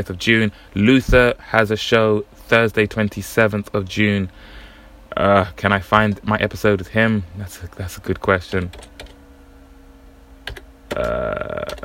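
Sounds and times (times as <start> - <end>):
speech: 0.0 - 9.0, 10.9 - 11.8
typing on a computer keyboard: 10.5 - 11.1, 11.7 - 11.8.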